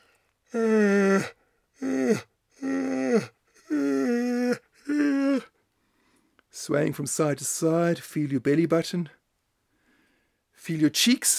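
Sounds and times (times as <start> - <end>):
speech: 0.5 - 1.3, 6.7 - 9.2, 10.7 - 11.3
person yawning: 0.5 - 5.6.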